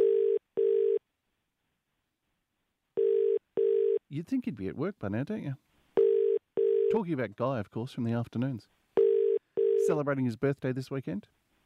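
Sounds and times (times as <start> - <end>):
telephone ringback tone from an unanswered outgoing call: 0.0 - 1.0, 3.0 - 4.0, 6.0 - 7.0, 9.0 - 10.0
speech: 4.1 - 5.7, 6.9 - 8.8, 9.8 - 11.4.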